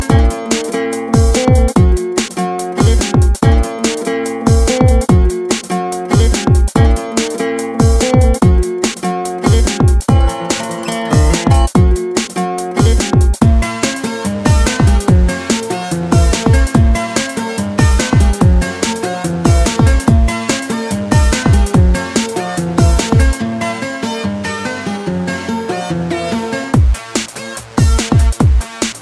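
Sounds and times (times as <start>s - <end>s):
guitar: 0.0s - 29.0s.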